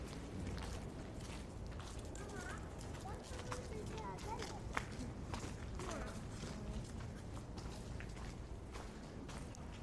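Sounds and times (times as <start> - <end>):
bustling street ambience: 0.0 - 9.8
footsteps on a hard cobbled old-town street: 0.0 - 9.8.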